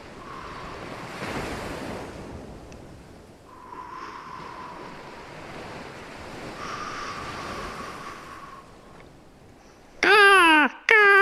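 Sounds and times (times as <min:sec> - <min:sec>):
voice imitating soothing ocean waves: 0:10.0 - 0:11.2.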